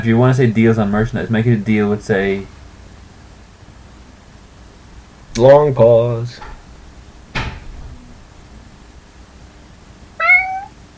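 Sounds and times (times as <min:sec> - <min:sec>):
speech: 0:00.0 - 0:02.6, 0:05.4 - 0:06.5
sharp knock or clack: 0:07.3 - 0:07.7
person imitating a cat meow: 0:10.2 - 0:10.7.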